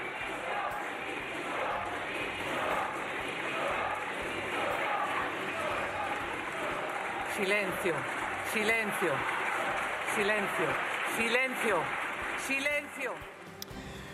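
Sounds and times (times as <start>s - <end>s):
overlapping voices shouting for resignation: 0.0s - 11.0s
parliamentary applause in a large indoor chamber: 0.0s - 13.6s
speech: 7.4s - 9.4s, 10.2s - 13.3s.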